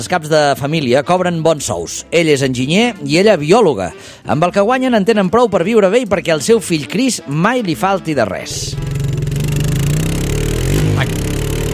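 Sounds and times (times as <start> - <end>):
speech: 0.0 - 9.1, 11.0 - 11.4
new moped engine droning while ridden: 8.5 - 11.7.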